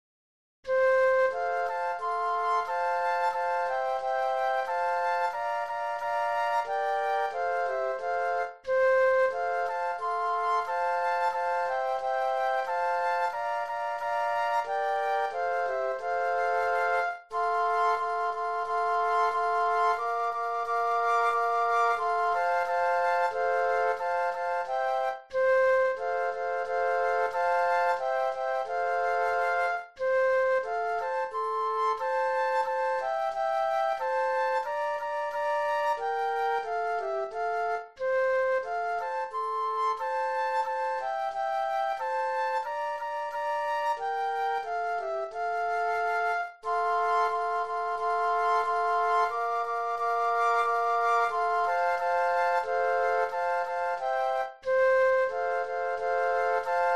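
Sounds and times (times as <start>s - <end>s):
flute trio playing: 0.7s - 56.9s.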